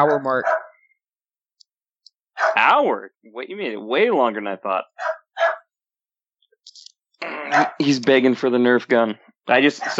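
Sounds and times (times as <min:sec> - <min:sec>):
speech: 0:00.0 - 0:00.6, 0:02.6 - 0:05.5, 0:07.2 - 0:09.9
dog barking: 0:00.0 - 0:00.8, 0:02.4 - 0:02.8, 0:05.0 - 0:05.7, 0:07.5 - 0:07.9, 0:09.7 - 0:09.9.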